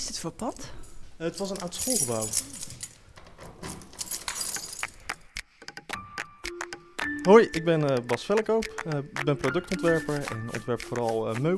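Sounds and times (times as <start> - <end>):
speech: 0.0 - 2.8, 7.2 - 11.5
large bunch of keys jangling and clinking: 0.4 - 0.8, 1.4 - 5.2.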